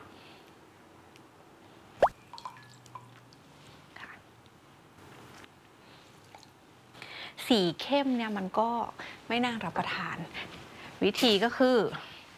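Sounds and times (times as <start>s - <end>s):
lime juice plopping into dark blue butterfly pea flower liquid: 2.0s - 3.2s
faint drips: 2.0s - 4.2s, 6.0s - 6.6s
speech: 7.5s - 12.1s.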